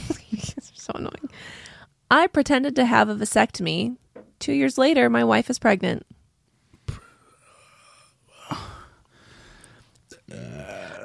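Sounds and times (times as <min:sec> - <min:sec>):
speech: 0:02.1 - 0:06.1
wheezy strained vocal sounds: 0:06.9 - 0:11.0
loud drawn-out burp: 0:10.1 - 0:11.0.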